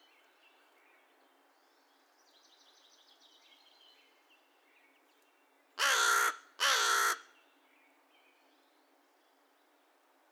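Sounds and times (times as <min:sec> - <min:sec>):
American crow giving hoarse caws: 0:05.8 - 0:07.3.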